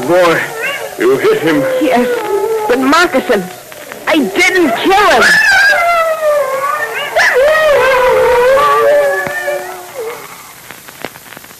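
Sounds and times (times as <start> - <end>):
wolves howling in long wavering overlapping cries: 0.0 - 10.6
speech: 0.1 - 5.9
faint sharp clicks: 1.0 - 5.1, 9.0 - 11.5.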